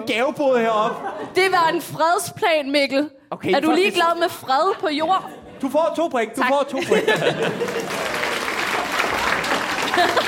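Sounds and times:
speech: 0.0s - 8.0s, 10.0s - 10.2s
laughter: 0.6s - 1.8s, 3.7s - 6.0s, 6.7s - 10.2s
audience applauding: 7.2s - 10.2s.

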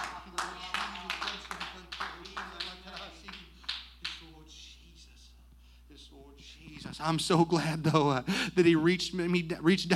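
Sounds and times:
audience clapping hands in a steady rhythmic beat: 0.0s - 4.5s
speech: 7.0s - 9.9s.

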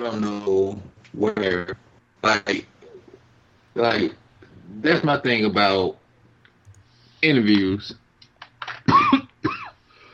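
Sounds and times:
speech: 0.0s - 2.7s, 3.8s - 4.2s, 4.8s - 6.0s, 7.2s - 8.0s
raspy coughing: 8.8s - 9.8s.

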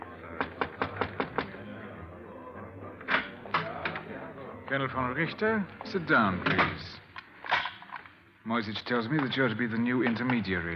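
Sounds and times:
knocking on a door: 0.4s - 1.5s
speech: 4.7s - 7.0s, 8.4s - 10.7s.

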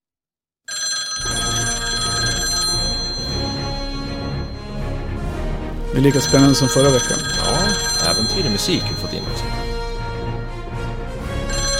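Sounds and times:
telephone bell ringing while a call is placed to a guest: 0.7s - 5.1s, 6.0s - 10.3s, 11.3s - 11.7s
speech: 6.0s - 9.6s.

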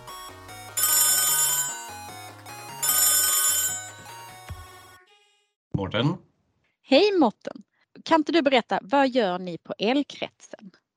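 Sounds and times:
telephone ringing during an outgoing call: 0.7s - 4.3s
speech: 5.8s - 6.3s, 6.9s - 10.8s.

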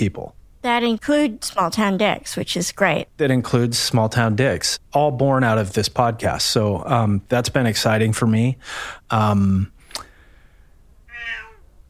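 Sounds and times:
speech: 0.0s - 9.8s
15-year-old female cat meowing: 11.1s - 11.7s.

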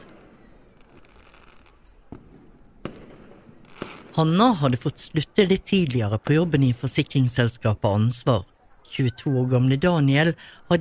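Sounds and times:
faint whistling rocket rising: 0.0s - 4.2s
fireworks cracking and banging: 0.0s - 7.2s
speech: 4.2s - 10.7s.

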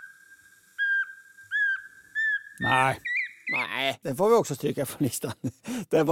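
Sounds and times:
thin steady whistle: 0.0s - 2.6s
Eurasian pygmy owl autumn call of two whistled notes: 0.0s - 3.7s
speech: 2.6s - 6.1s.

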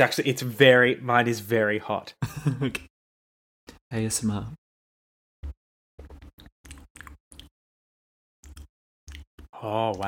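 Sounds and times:
speech: 0.0s - 2.9s, 3.9s - 4.6s, 9.6s - 10.0s
person chewing while tasting a hot milky preparation: 6.2s - 7.5s, 8.4s - 9.3s.

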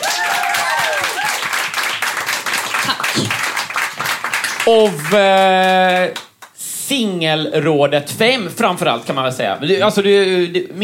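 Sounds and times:
whoops and cheers: 0.0s - 1.6s
crowd applause: 0.0s - 6.2s
speech: 4.7s - 6.2s, 6.9s - 10.8s.

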